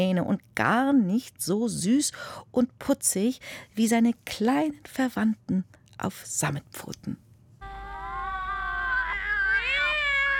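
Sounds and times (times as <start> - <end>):
speech: 0.0 - 7.3
small cat meowing: 8.5 - 10.3.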